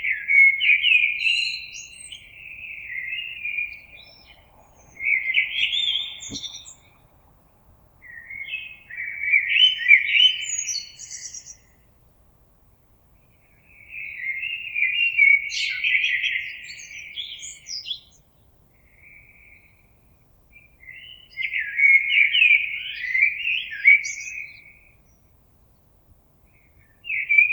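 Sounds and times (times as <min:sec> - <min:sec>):
common blackbird singing: 0:00.0 - 0:07.2, 0:08.0 - 0:11.8, 0:13.6 - 0:19.8, 0:20.6 - 0:25.2, 0:26.6 - 0:27.5.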